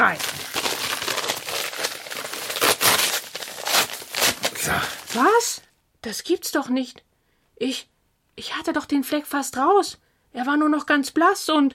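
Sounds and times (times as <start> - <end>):
speech: 0.0 - 0.6, 4.7 - 11.7
paper envelopes being opened: 0.0 - 5.5.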